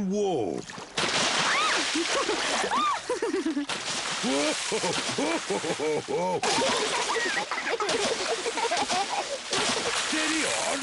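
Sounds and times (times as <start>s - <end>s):
speech: 0.0s - 0.9s, 2.0s - 10.8s
water splashing and sloshing: 0.3s - 10.8s
laughter: 1.8s - 10.8s.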